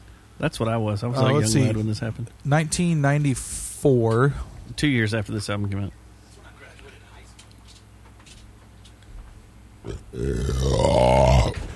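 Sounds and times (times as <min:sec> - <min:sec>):
speech: 0:00.4 - 0:06.0, 0:10.2 - 0:11.2
long loud burp into a microphone: 0:09.8 - 0:11.7.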